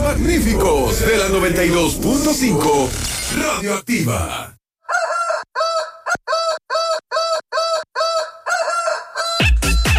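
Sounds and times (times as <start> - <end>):
speech: 0.1 - 4.5
rooster crowing: 4.8 - 9.8.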